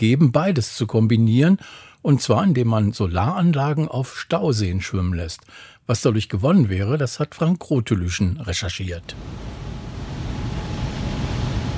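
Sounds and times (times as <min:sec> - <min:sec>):
speech: 0:00.0 - 0:09.6
hydroelectric dam turbines roaring: 0:09.1 - 0:11.7.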